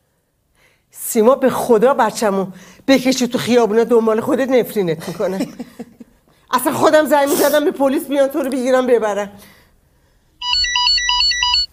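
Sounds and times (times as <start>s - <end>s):
speech: 1.1s - 9.5s
telephone ringing with a loud electronic ringtone: 10.4s - 11.7s.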